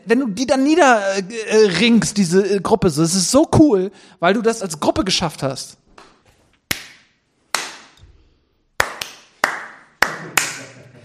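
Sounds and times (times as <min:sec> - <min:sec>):
speech: 0:00.0 - 0:05.8
hand claps: 0:06.7 - 0:08.1, 0:08.8 - 0:11.0.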